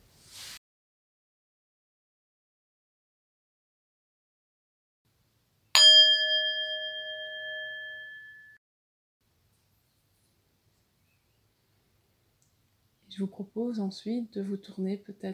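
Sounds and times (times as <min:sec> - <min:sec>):
brief soft rustle: 0:00.0 - 0:00.6, 0:09.4 - 0:11.8
meditation bell struck at the close of a guided meditation: 0:05.8 - 0:08.6
speech: 0:13.1 - 0:15.3.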